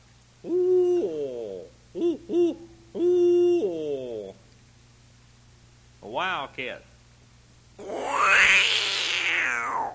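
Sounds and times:
faint low hum: 0.0s - 9.9s
owl hooting: 0.4s - 4.4s, 7.8s - 9.9s
speech: 6.4s - 6.9s.

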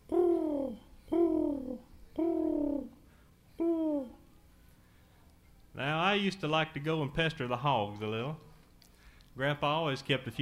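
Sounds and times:
pigeons cooing by a hen house and chicken yard: 0.0s - 3.0s, 3.6s - 4.2s
speech: 6.2s - 8.5s, 9.4s - 10.4s.

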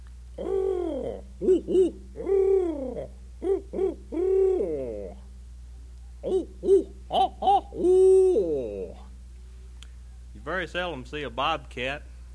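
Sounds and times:
owl hooting: 0.4s - 5.3s, 6.1s - 9.2s
speech: 1.1s - 2.4s, 10.7s - 12.1s.

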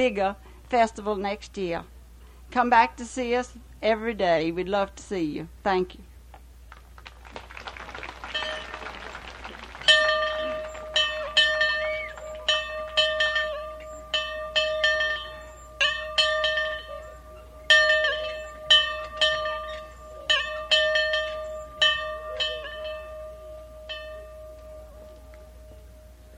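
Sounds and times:
speech: 0.0s - 1.9s, 2.5s - 6.1s
bell ringing to open a meeting: 8.1s - 26.0s.

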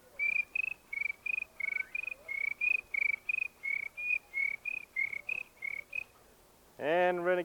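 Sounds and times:
cricket chirping: 0.2s - 6.1s
speech: 6.8s - 7.4s.

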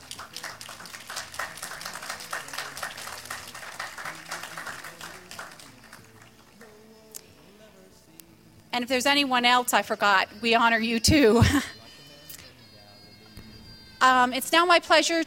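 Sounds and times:
audience applause: 0.0s - 6.7s
faint murmur of voices: 0.0s - 15.2s
speech: 8.8s - 11.8s, 14.0s - 15.2s.

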